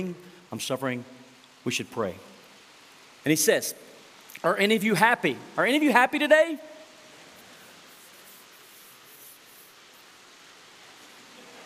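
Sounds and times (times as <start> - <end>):
speech: 0.0 - 2.3, 3.2 - 6.7
rain falling: 0.0 - 11.6.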